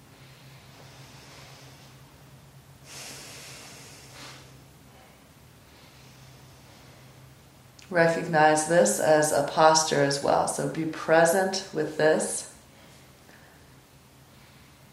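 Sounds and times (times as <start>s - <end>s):
slow deep breathing during a yoga session lying on the floor: 0.0s - 7.7s, 12.6s - 14.9s
speech: 7.9s - 12.5s.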